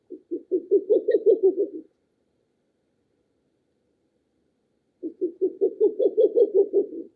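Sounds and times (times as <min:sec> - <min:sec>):
owl hooting: 0:00.1 - 0:01.9, 0:05.0 - 0:07.1.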